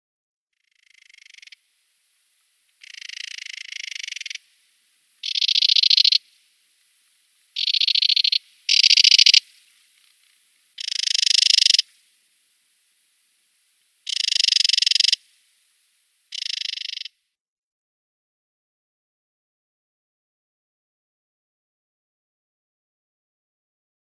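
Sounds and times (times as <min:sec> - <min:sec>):
Spectacled Warbler calls: 0:02.8 - 0:04.5, 0:05.2 - 0:06.2, 0:07.6 - 0:11.9, 0:14.1 - 0:15.2, 0:16.3 - 0:17.1.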